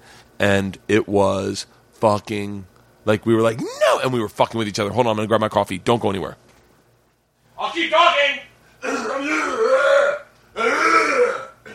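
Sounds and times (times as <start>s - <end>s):
speech: 0.4s - 6.4s, 7.7s - 11.4s
person clearing throat: 8.8s - 11.7s.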